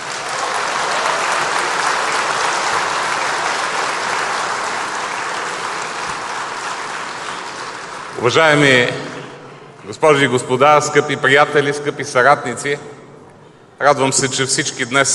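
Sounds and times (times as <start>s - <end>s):
large audience applauding: 0.0s - 8.7s
speech: 8.2s - 9.1s, 9.9s - 13.0s, 13.8s - 15.1s.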